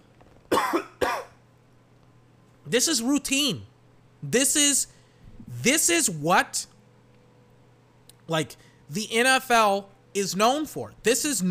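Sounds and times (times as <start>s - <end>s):
sharp coughs: 0.5s - 1.4s
speech: 2.7s - 5.0s, 5.6s - 6.8s, 8.3s - 11.5s.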